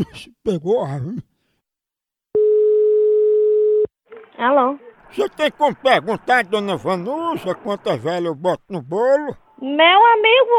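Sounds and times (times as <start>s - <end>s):
speech: 0.0s - 1.3s, 4.4s - 10.5s
telephone dial tone as a call is placed: 2.4s - 3.9s
laughter: 5.1s - 9.4s.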